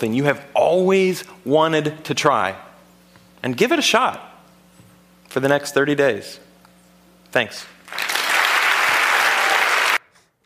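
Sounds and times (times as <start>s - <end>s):
speech: 0.0s - 2.7s, 3.4s - 4.3s, 5.3s - 6.4s, 7.3s - 8.0s
room full of people applauding: 7.9s - 10.0s.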